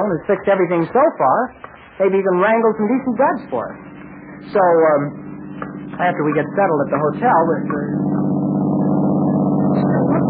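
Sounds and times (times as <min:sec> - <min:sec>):
speech: 0:00.0 - 0:08.3
faint higher whines from a passing car: 0:01.8 - 0:10.2
car rumbling as it drives by: 0:03.4 - 0:10.2.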